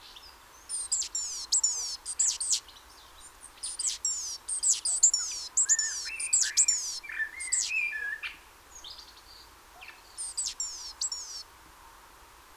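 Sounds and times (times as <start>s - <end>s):
lower bird chirps: 0.6s - 8.2s, 10.2s - 11.4s
great tit Parus major sliding-down calls with sharp clicks: 0.7s - 7.8s, 10.2s - 11.4s.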